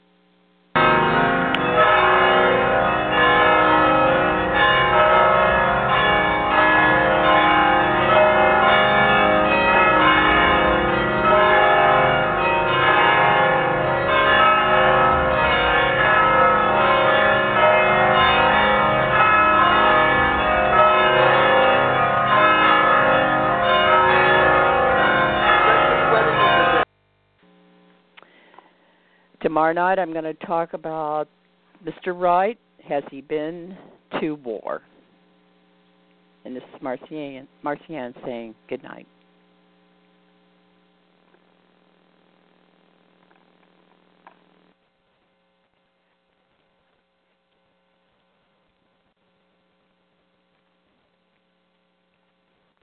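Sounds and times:
wedding church bells ringing: 0.8 - 26.9
speech: 29.6 - 35.0, 36.4 - 39.2.

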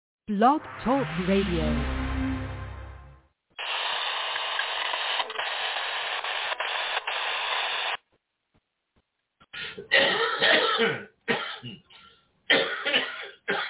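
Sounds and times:
speech: 0.3 - 2.0
steady static-like hiss: 3.6 - 8.0
loud coughs: 9.5 - 13.6
raspy throat clearing: 9.5 - 13.6.

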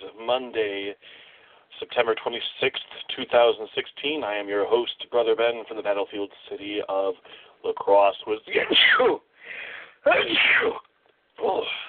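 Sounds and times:
speech: 0.3 - 10.8, 11.4 - 11.8
person sneezing: 8.5 - 9.2, 10.0 - 10.8.

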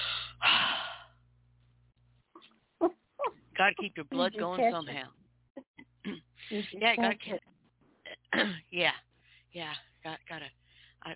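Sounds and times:
deep breath: 0.0 - 1.2, 10.6 - 11.0
low steady hum: 0.0 - 11.1
speech: 3.6 - 5.2, 6.1 - 7.5, 8.4 - 11.1.

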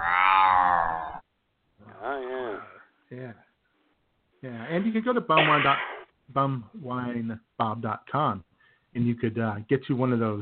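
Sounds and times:
human voice imitating a cat meowing and yowling: 0.0 - 1.2, 1.8 - 2.8
speech: 4.4 - 10.4.

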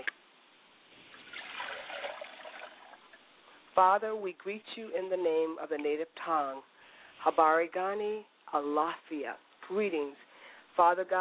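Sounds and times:
liquid poured out as a libation in a steady trickle: 1.1 - 3.2
speech: 3.8 - 10.2, 10.8 - 11.1.

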